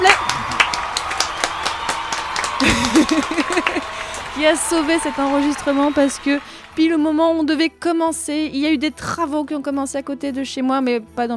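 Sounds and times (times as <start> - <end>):
a few people clapping in a lively burst of applause: 0.0 - 7.4
laughter: 2.4 - 6.1
speech: 4.4 - 11.3.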